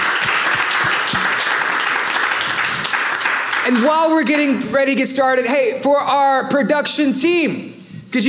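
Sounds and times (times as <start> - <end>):
crowd applauding: 0.0 - 4.5
speech: 3.7 - 8.2.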